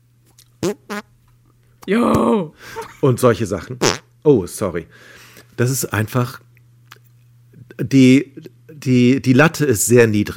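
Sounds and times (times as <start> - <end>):
steady low hum: 0.0 - 10.3
fart noises made with the hands: 0.6 - 1.1, 3.8 - 4.1
speech: 1.9 - 6.4, 7.8 - 10.3.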